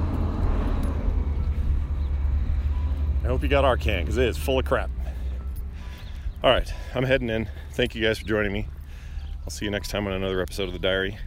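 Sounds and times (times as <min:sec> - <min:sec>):
garbage truck passing outside: 0:00.0 - 0:07.8
road noise: 0:00.0 - 0:11.2
speech: 0:03.4 - 0:05.0, 0:06.4 - 0:08.7, 0:09.5 - 0:11.2.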